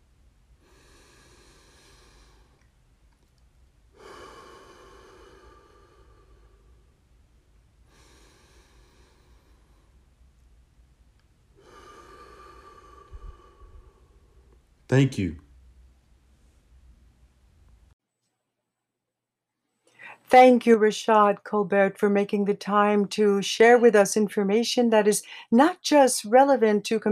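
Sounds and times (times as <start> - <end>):
slow deep breathing during a guided breathing exercise: 0.6 - 2.7, 3.9 - 7.1, 7.8 - 10.1, 11.5 - 14.6
speech: 14.9 - 15.4, 20.3 - 27.1.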